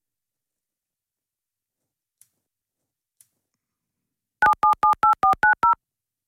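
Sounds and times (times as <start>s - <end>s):
touch-tone beeps of a phone number being dialed: 4.4s - 5.8s.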